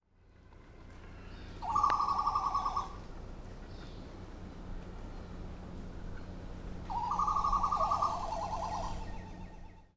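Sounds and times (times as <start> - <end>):
Fregata minor bird at Punta Presidio on Isla del Coco: 1.6 - 3.0, 6.9 - 9.9.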